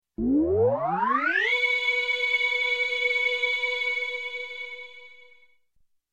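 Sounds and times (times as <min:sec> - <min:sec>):
electronic space sound: 0:00.2 - 0:04.9.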